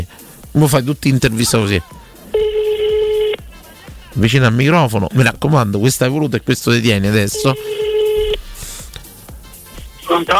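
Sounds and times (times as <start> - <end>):
speech: 0.5 - 2.0, 4.2 - 7.9, 10.1 - 10.3
electronic ring tone through a telephone on speakerphone: 2.3 - 3.4, 7.3 - 8.4.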